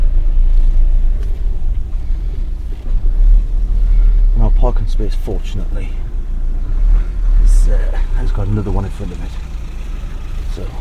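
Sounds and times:
car engine rumble while reversing into a parking space: 0.0 - 10.7
speech: 4.8 - 6.1, 7.7 - 9.5, 10.6 - 10.7.

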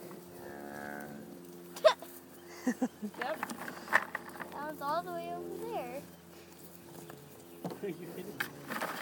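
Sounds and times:
cow mooing: 0.3 - 1.4
speech: 2.6 - 3.7, 4.7 - 6.2, 7.8 - 8.9.

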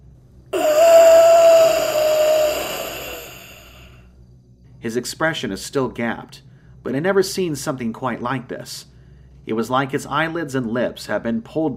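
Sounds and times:
rasping dying gasp with a strained groaning tone: 0.6 - 4.0
speech: 4.8 - 8.9, 9.5 - 11.7.

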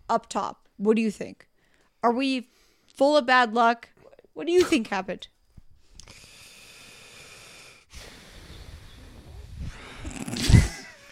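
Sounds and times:
speech: 0.1 - 5.3
heavy breath pushed into the microphone: 5.9 - 10.2.

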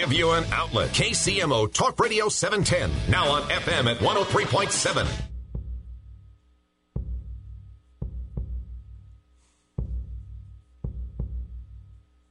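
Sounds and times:
speech: 0.0 - 5.3
slow deep heartbeat thudding: 5.3 - 6.4, 7.0 - 9.2, 9.8 - 12.1.

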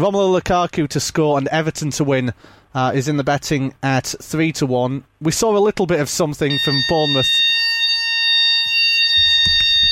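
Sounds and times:
speech: 0.0 - 7.7
fire alarm sounding during a test: 6.5 - 9.9
low knocks: 9.2 - 9.9.

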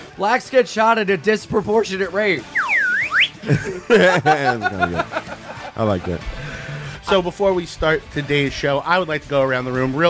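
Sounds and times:
speech: 0.2 - 2.6, 3.4 - 6.4, 7.1 - 10.0
slide whistle upward swoops: 2.4 - 3.4
several people chuckling and laughing: 3.4 - 7.3.

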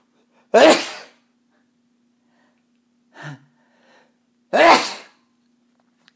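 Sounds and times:
person sneezing: 0.5 - 1.2, 4.5 - 5.2.

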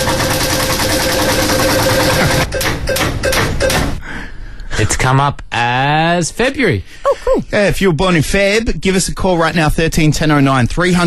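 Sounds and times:
digital prize wheel spinning: 0.0 - 3.4
speech: 5.0 - 11.0.

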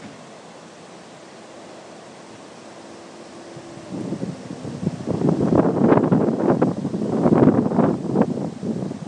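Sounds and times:
strong wind of a thunderstorm blowing outdoors: 1.7 - 9.0
wind buffeting the microphone: 3.4 - 9.0.

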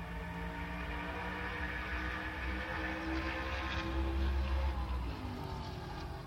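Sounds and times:
drag racing vehicles roaring at the finish of a drag strip: 0.0 - 6.2.

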